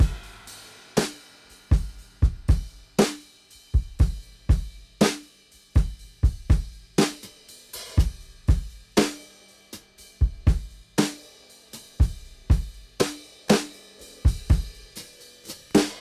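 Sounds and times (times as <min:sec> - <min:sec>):
120 BPM drum loop: 0:00.0 - 0:01.1, 0:01.7 - 0:03.2, 0:03.8 - 0:05.2, 0:05.8 - 0:09.2, 0:10.2 - 0:11.2, 0:12.0 - 0:16.0.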